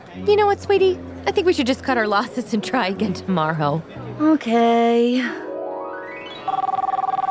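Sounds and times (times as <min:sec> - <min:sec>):
speech: 0:00.2 - 0:05.4
new mobile phone ringtone with rising tone and warbling trill: 0:06.2 - 0:07.2.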